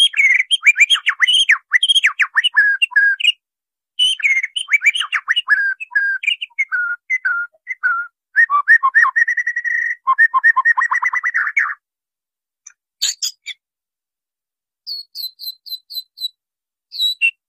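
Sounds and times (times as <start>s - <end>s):
White-rumped shama training song with mellow whistled phrases: 0.0s - 3.4s, 4.0s - 11.8s, 14.9s - 17.4s.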